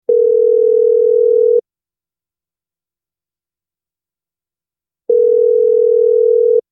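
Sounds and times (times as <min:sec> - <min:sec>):
telephone ringback tone: 0:00.1 - 0:01.6, 0:05.1 - 0:06.6.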